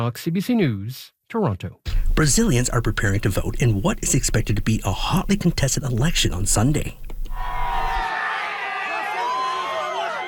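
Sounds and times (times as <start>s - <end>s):
speech: 0.0s - 7.6s
large crowd cheering and shouting at a political rally: 7.4s - 10.2s.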